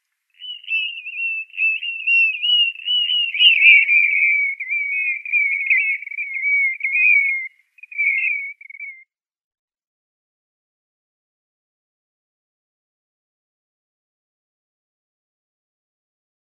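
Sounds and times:
blue-naped mousebird calling in a warbling whistle: 0:00.4 - 0:09.0.

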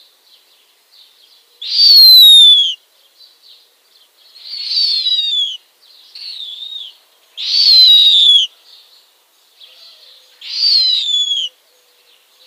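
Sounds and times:
downy snowy owl chicks screeching: 0:01.6 - 0:02.8, 0:04.4 - 0:05.6, 0:06.2 - 0:08.5, 0:09.6 - 0:11.5.

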